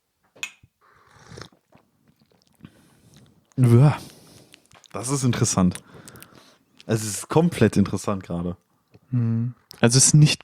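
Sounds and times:
loud slurp of tea pulled through the lips during a tea tasting: 1.0s - 1.6s
quiet mouth and swallowing sounds: 1.0s - 6.9s
speech: 3.6s - 4.1s, 5.0s - 6.0s, 6.9s - 10.4s.

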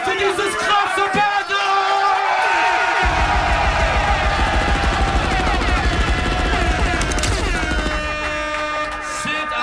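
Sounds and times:
audience cheering and shouting for an MC: 0.0s - 9.6s
booming rumble: 3.0s - 8.6s.

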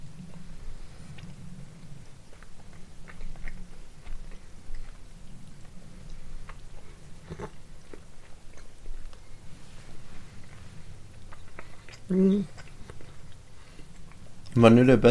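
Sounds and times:
chewing salted caramel sweets during a tasting: 0.0s - 15.0s
speech: 12.1s - 12.6s, 14.6s - 15.0s.

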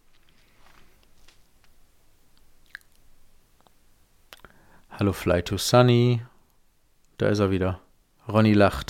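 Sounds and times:
wet lip smacks and mouth clicks into a microphone: 2.3s - 4.6s
speech: 5.0s - 6.3s, 7.2s - 8.8s.

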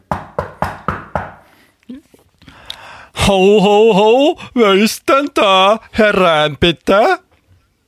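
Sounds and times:
knocking on a door: 0.0s - 1.5s
speech: 1.9s - 2.7s, 3.3s - 7.2s.

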